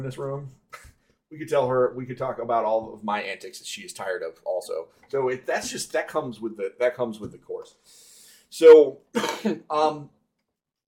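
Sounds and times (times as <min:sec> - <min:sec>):
speech: 0:00.0 - 0:10.2
person coughing: 0:09.2 - 0:09.7.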